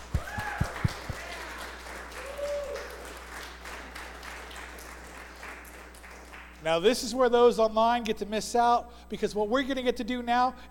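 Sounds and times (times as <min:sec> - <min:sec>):
people whooping: 0:00.0 - 0:03.2
church audience applause during a morning service: 0:00.0 - 0:06.4
speech: 0:06.6 - 0:10.6.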